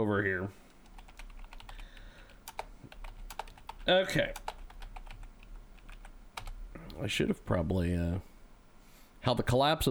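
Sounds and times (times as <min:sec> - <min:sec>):
speech: 0:00.0 - 0:00.7, 0:03.9 - 0:04.4, 0:07.0 - 0:08.3, 0:09.2 - 0:09.8
typing on a computer keyboard: 0:00.7 - 0:06.6.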